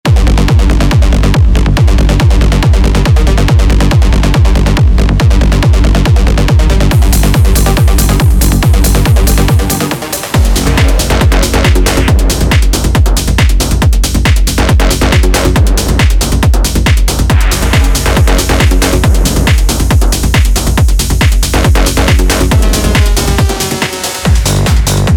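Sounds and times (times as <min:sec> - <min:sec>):
techno dj mix: 0:00.1 - 0:25.1.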